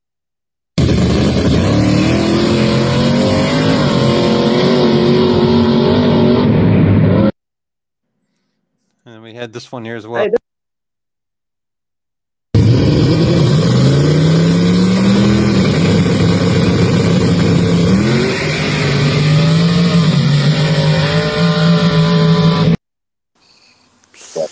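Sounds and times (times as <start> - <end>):
drag racing car engine revving and accelerating through gear shifts: 0.8 - 7.3, 12.6 - 22.8
speech: 9.4 - 10.5.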